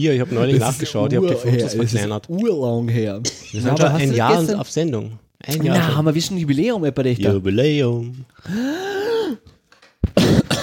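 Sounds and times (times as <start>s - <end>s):
speech: 0.0s - 9.5s
harsh breathy coughs into a microphone: 10.0s - 10.6s.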